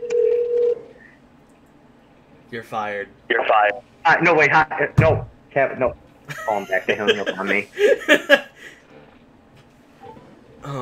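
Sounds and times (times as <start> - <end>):
electronic telephone dialing tone: 0.0 - 0.9
faint hum: 0.0 - 10.7
speech: 2.5 - 8.8
laughter: 6.3 - 8.8.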